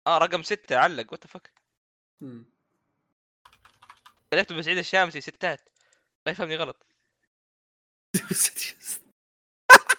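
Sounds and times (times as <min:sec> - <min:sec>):
speech: 0:00.0 - 0:01.6, 0:02.2 - 0:02.5, 0:04.3 - 0:06.9, 0:08.3 - 0:09.0
computer keyboard keys being pressed: 0:03.5 - 0:04.2
laughter: 0:09.7 - 0:09.9.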